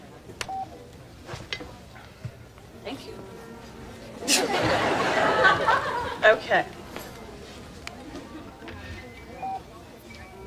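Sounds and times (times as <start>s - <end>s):
chatter: 0.0s - 10.4s
electronic telephone keypad beeps: 0.4s - 0.8s, 8.6s - 10.4s
crowd laughter: 4.2s - 6.6s.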